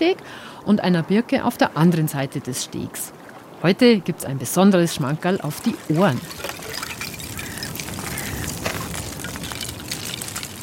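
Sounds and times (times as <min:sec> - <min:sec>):
speech: 0:00.0 - 0:06.5
water splashing gently: 0:02.7 - 0:10.6
thin ice ringing from small waves of a winter swimmer's strokes: 0:05.4 - 0:10.6.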